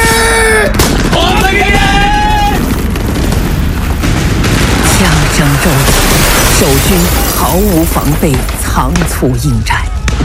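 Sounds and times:
people shouting: 0.0s - 2.7s
booming blasts in a war drama: 0.0s - 10.2s
gunfire in a war drama set during a Japanese attack: 0.7s - 10.2s
loud rumbling background: 0.8s - 9.0s
speech: 6.6s - 10.2s.

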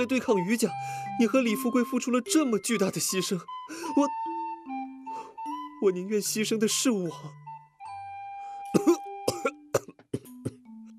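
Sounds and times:
speech: 0.0s - 4.3s, 5.8s - 7.4s
man coughing violently after choking on tea: 8.7s - 10.6s.

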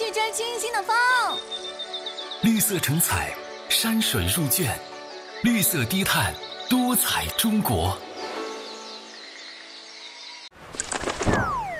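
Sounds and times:
speech: 0.3s - 1.6s, 2.4s - 8.1s
light-vented bulbul descending call note: 1.0s - 10.5s
light-vented bulbul wings fluttering: 10.6s - 11.7s.

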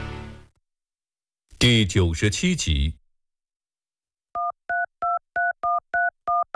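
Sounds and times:
speech: 1.6s - 3.0s
telephone keypad dialing tones: 4.4s - 6.5s.

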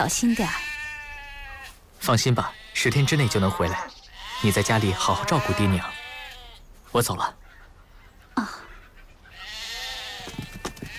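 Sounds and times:
speech: 0.0s - 0.7s, 2.0s - 6.0s, 6.9s - 7.4s, 8.4s - 8.7s
sheep bleating as cattle and sheep are driven along a road: 0.0s - 6.6s, 9.3s - 10.9s.

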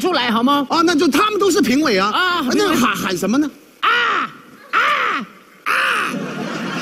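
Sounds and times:
speech: 0.0s - 3.6s
person loudly mimicking harsh raspy crow caws: 3.8s - 6.2s
laughter: 5.7s - 6.8s.

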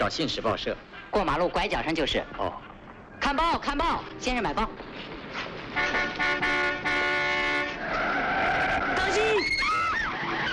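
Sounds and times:
speech: 0.0s - 5.1s
road noise: 0.0s - 10.5s
car tires screeching in a skid on a road: 4.8s - 10.5s.

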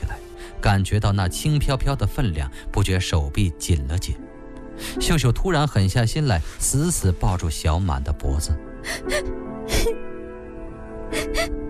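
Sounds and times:
speech: 0.7s - 10.0s
person crying and whimpering: 8.8s - 10.1s, 11.1s - 11.6s.

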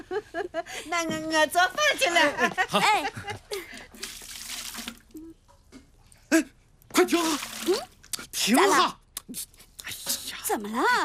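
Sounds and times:
speech: 0.3s - 3.4s, 8.5s - 9.0s, 10.6s - 11.0s
laughter: 1.8s - 3.8s
water poured into a washbasin for washing a face: 3.8s - 5.2s, 7.0s - 8.0s.

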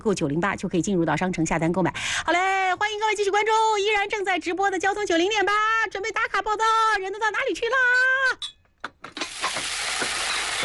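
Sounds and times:
speech: 0.0s - 8.5s
chili peppers stir-frying in an iron wok: 9.2s - 10.6s.

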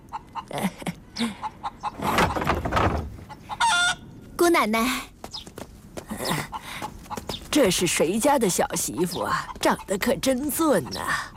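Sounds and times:
hen clucking after laying an egg: 0.0s - 4.2s, 6.1s - 11.3s
speech: 0.5s - 1.4s, 4.5s - 5.1s, 7.6s - 11.2s.

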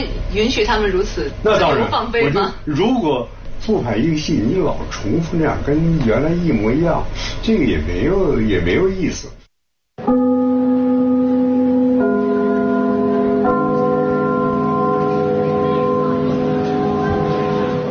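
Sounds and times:
speech: 0.0s - 9.4s
theater curtain-opening bell chime: 10.0s - 17.8s.

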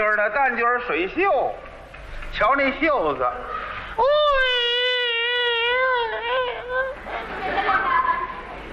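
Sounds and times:
speech: 0.0s - 1.7s, 2.3s - 4.5s
voice imitating Peking opera-style crying: 4.0s - 7.0s
laughter: 5.7s - 8.7s.

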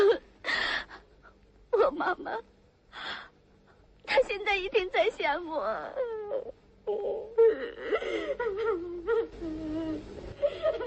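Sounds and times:
speech: 1.9s - 3.2s, 4.3s - 10.8s
girl crying and whimpering: 5.7s - 10.8s.

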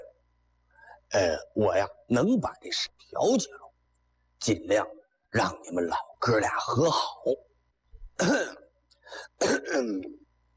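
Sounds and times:
speech: 1.1s - 3.6s, 4.4s - 7.4s, 8.2s - 10.2s
man clearing throat: 8.2s - 10.2s
man coughing harshly: 8.2s - 10.2s.

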